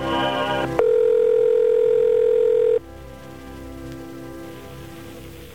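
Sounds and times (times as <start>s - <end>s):
dial-type telephone line tones while waiting for an operator: 0.1s - 2.8s.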